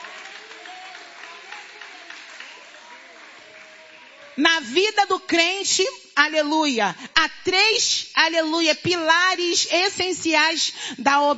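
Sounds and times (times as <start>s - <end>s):
congregation clapping hands: 0.0s - 4.7s
speech: 4.4s - 11.3s.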